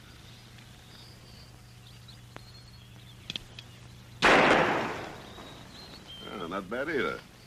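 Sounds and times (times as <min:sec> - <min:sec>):
faint clicks: 0:00.0 - 0:04.0
gunshot fired at a playing card in a western shooting contest: 0:04.2 - 0:05.6
speech: 0:06.5 - 0:07.3.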